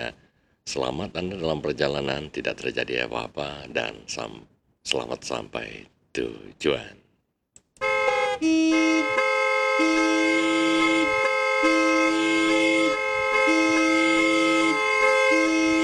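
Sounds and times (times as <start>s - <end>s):
speech: 0.0s - 7.0s, 8.4s - 9.2s, 9.8s - 10.4s
vehicle horn honking: 7.8s - 15.8s.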